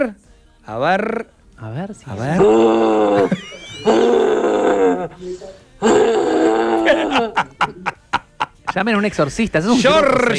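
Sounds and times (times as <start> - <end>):
speech: 0.0 - 8.0, 8.7 - 10.3
laughter: 0.7 - 10.3
person imitating a rutting deer stag's roaring call: 0.8 - 1.4, 2.2 - 5.2, 5.8 - 7.5.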